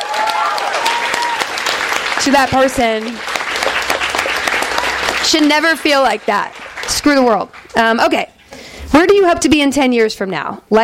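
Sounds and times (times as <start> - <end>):
audience applause: 0.0 - 8.0
speech: 2.2 - 3.3, 5.2 - 8.3, 8.9 - 10.8.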